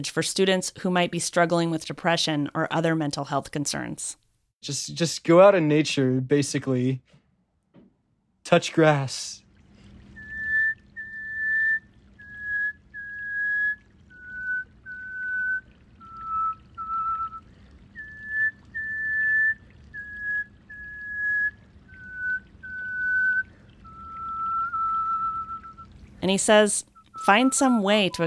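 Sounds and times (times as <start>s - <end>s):
speech: 0.0s - 7.2s, 8.5s - 9.4s, 26.3s - 28.2s
person whistling a slow melody: 10.2s - 25.9s, 27.0s - 28.2s.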